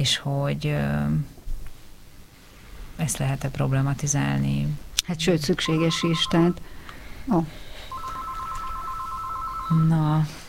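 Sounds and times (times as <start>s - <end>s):
speech: 0.0s - 1.4s, 3.0s - 7.7s, 9.7s - 10.4s
telephone ringing with warbling electronic tone: 5.6s - 6.8s, 7.8s - 10.3s.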